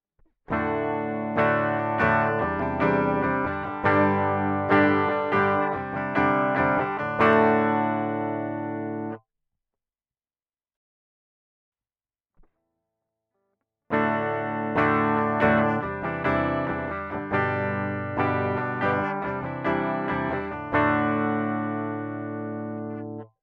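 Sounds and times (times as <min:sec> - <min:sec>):
guitar direct out: 0:00.2 - 0:09.2, 0:13.9 - 0:23.3.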